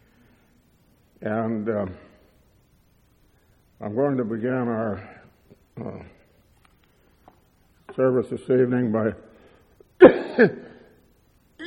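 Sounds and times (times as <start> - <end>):
speech: 1.2 - 2.1, 3.8 - 5.2, 5.8 - 6.2, 8.0 - 9.3, 10.0 - 10.6
person coughing at an evening service: 10.0 - 10.9.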